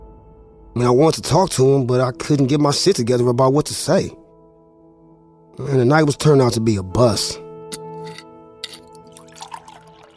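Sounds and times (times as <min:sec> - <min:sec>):
speech: 0:00.8 - 0:04.2, 0:05.6 - 0:07.4
drink pouring into a glass: 0:08.6 - 0:10.1.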